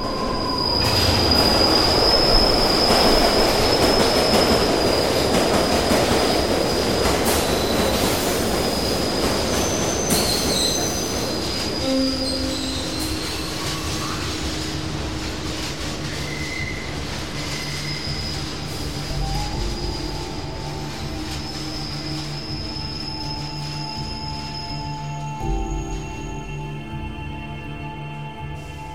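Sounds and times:
high metal train wheels squealing: 0.0 - 27.0
train roaring out of a tunnel: 0.0 - 28.9.

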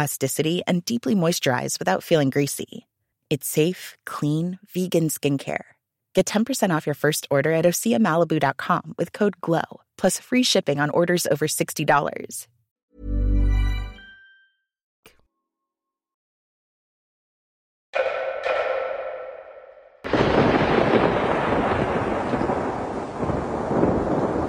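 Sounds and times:
speech: 0.0 - 13.2
thunder from a storm rolling into Dubai: 18.0 - 24.4
heavy rain downpour ahead of extreme flooding: 20.1 - 24.4.

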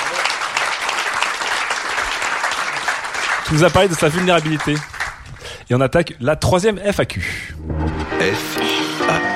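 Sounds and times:
audience applause: 0.0 - 5.3
speech: 3.5 - 4.9, 5.7 - 9.2.

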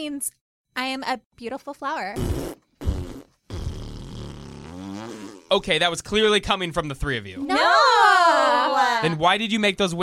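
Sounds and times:
speech: 0.0 - 2.6, 5.5 - 8.0, 8.8 - 10.0
fart noises: 2.2 - 5.8.

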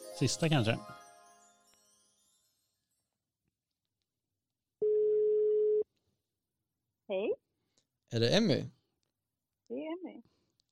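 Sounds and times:
musical chime: 0.0 - 3.1
speech: 0.2 - 1.0, 8.1 - 8.8
telephone ringback tone: 4.8 - 5.8.

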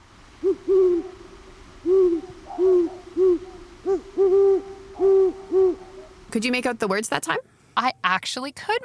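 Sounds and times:
great horned owl hooting call: 0.4 - 6.3
speech: 6.4 - 8.8.

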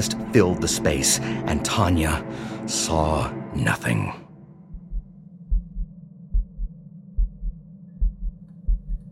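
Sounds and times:
speech: 0.0 - 4.2
thudding heartbeat in low double beats: 4.6 - 9.1.

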